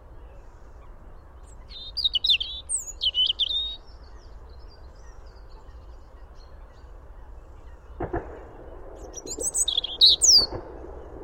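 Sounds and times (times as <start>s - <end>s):
European robin Erithacus rubecula warbling song: 1.6s - 3.9s, 9.2s - 10.6s.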